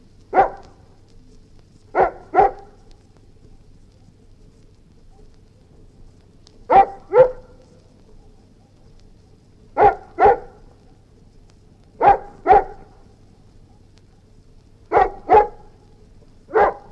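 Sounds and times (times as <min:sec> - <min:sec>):
low background hum: 0:00.0 - 0:16.9
Golden Retriever barking: 0:00.3 - 0:00.8, 0:01.9 - 0:02.9, 0:06.7 - 0:07.7, 0:09.8 - 0:10.7, 0:12.0 - 0:13.1, 0:14.9 - 0:15.8, 0:16.5 - 0:16.9.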